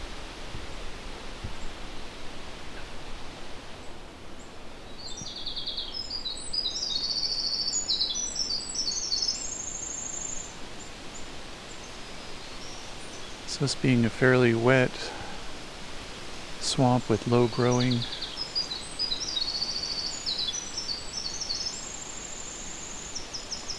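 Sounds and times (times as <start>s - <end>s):
steady rushing hiss: 0.0s - 23.7s
black-throated green warbler singing: 3.9s - 15.4s, 16.6s - 23.7s
speech: 13.6s - 15.2s, 16.8s - 18.2s.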